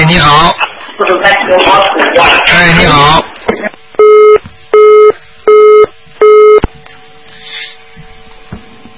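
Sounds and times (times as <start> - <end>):
speech: 0.1 - 3.8
telephone busy tone after call hangs up: 4.0 - 6.6.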